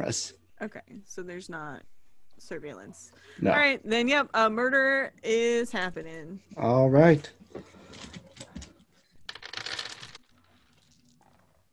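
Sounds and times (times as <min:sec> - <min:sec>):
speech: 0:00.0 - 0:08.2
dice rolling on a table: 0:09.2 - 0:11.5.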